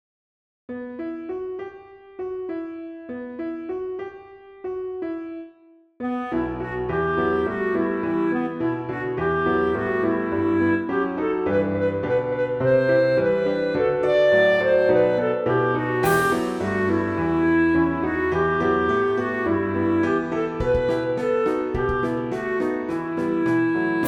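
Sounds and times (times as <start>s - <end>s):
piano: 0.7s - 24.0s
clarinet: 6.0s - 24.0s.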